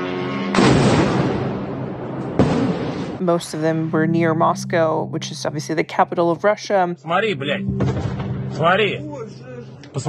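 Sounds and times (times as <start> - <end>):
explosions during drone attack on city: 0.6 - 3.2
speech: 3.2 - 9.4.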